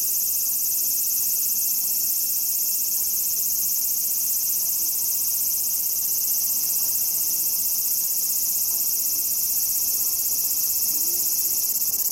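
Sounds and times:
large brown cicada singing: 0.0 - 12.1.

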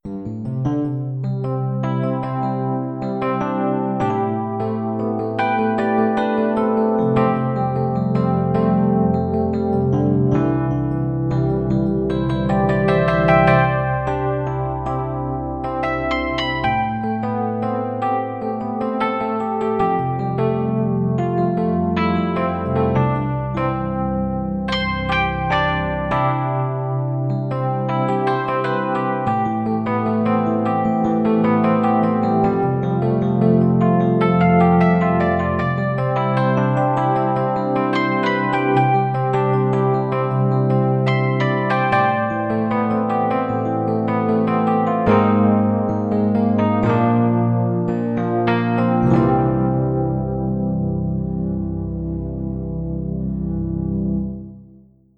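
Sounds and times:
MIDI Rhodes electric piano: 0.0 - 55.1.

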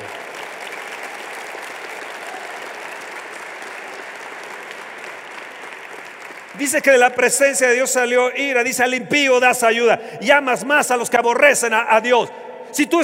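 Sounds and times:
large audience applauding loudly: 0.0 - 8.0
speech: 6.6 - 13.0.

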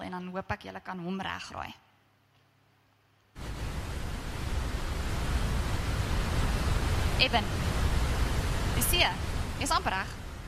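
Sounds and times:
speech: 0.1 - 1.9, 7.2 - 7.7, 8.8 - 10.2
ocean waves roaring: 3.4 - 10.4.

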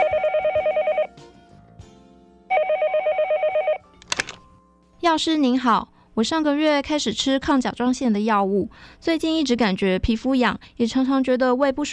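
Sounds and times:
telephone ringing with warbling trills: 0.0 - 1.1, 2.5 - 4.4
telephone handset pickup click: 4.0 - 4.5
speech: 5.2 - 11.9.

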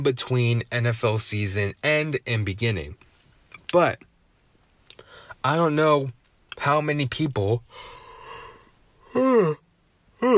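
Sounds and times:
speech: 0.0 - 3.1, 3.7 - 4.1, 5.4 - 7.9, 9.1 - 9.6, 10.2 - 10.3
person yawning: 8.2 - 9.6, 10.2 - 10.3.

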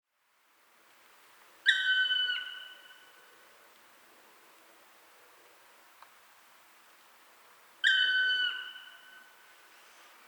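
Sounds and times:
black woodpecker Dryocopus martius whistled calls: 1.7 - 3.1, 7.8 - 9.3.

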